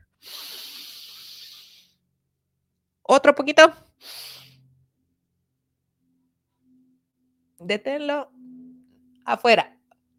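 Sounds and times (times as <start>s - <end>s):
breath drawn in through the nose during a guided breathing exercise: 0.1s - 2.0s, 4.0s - 4.7s
speech: 3.1s - 4.3s, 7.7s - 8.6s, 9.3s - 9.7s.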